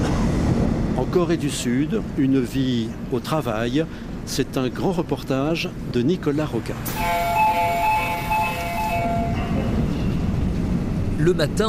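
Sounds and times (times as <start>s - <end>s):
crowded morning subway train carriage rumbling in Seoul: 0.0s - 11.6s
speech: 1.1s - 7.4s, 11.2s - 11.6s
subway train electronic chime melody in Seoul: 7.0s - 9.6s.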